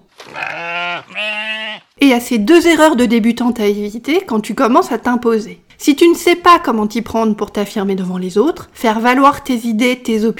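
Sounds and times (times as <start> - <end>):
sheep bleating: 0.2 - 2.0
speech: 2.0 - 10.3.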